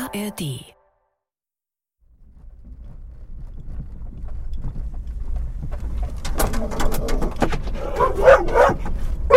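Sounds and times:
speech: 0.1 - 0.7
running car rumbling: 2.0 - 9.3
dog barking and yapping inside a car: 7.8 - 9.3.

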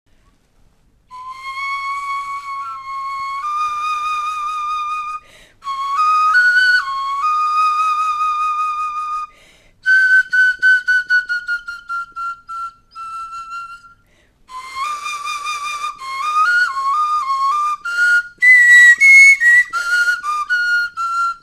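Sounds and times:
bone flute: 1.1 - 21.4.

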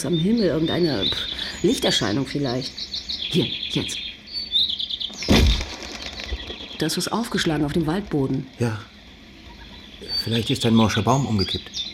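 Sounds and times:
speech: 0.0 - 4.1, 6.8 - 8.9, 10.0 - 11.8
birds chirping rapidly and excitedly: 0.0 - 11.9
busy rustling background: 5.1 - 10.0
flurry of birds' flapping wings taking off: 5.2 - 7.7.

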